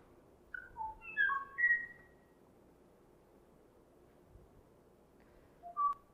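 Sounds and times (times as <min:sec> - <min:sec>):
Kauai oo bird calling with clear whistled notes: 0:00.5 - 0:02.3, 0:05.6 - 0:06.1.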